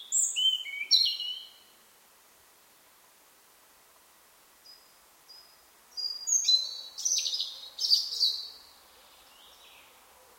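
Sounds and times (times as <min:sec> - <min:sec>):
European robin Erithacus rubecula singing: 0:00.0 - 0:01.7, 0:04.6 - 0:10.0.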